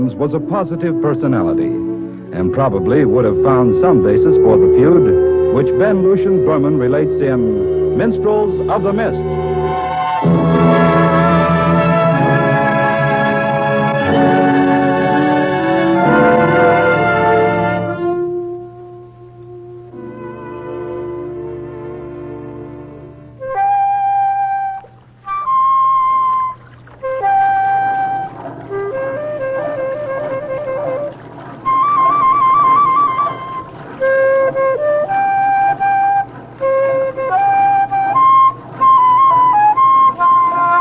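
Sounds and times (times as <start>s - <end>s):
speech: 0.0s - 9.4s
flute playing a lilting melody: 0.0s - 40.7s
sustained low chord: 0.0s - 40.7s.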